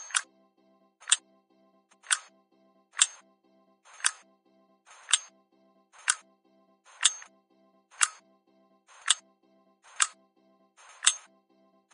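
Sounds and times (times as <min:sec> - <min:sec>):
clock ticking: 0:00.0 - 0:00.2, 0:02.0 - 0:02.3, 0:03.0 - 0:03.2, 0:03.9 - 0:04.2, 0:04.9 - 0:05.3, 0:06.0 - 0:06.2, 0:06.9 - 0:07.3, 0:07.9 - 0:08.2, 0:08.9 - 0:09.2, 0:09.9 - 0:10.1, 0:10.8 - 0:11.3.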